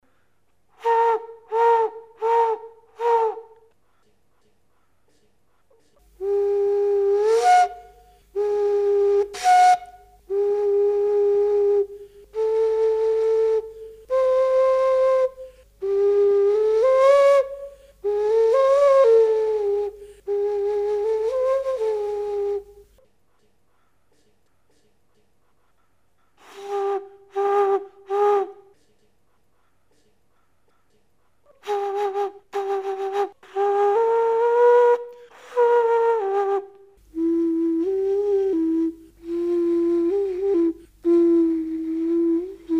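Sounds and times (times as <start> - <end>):
globular flute playing: 0.8 - 3.7, 6.2 - 23.0, 26.4 - 28.7, 31.6 - 42.7.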